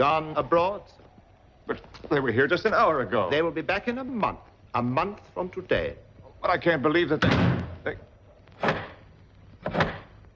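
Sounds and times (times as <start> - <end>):
speech: 0.0 - 1.1, 1.7 - 8.1
door slammed shut and bolted: 7.2 - 7.9, 8.6 - 10.2.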